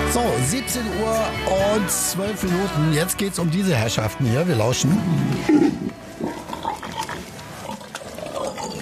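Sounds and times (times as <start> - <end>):
speech: 0.1 - 6.3
wild boars grunting: 4.8 - 8.8.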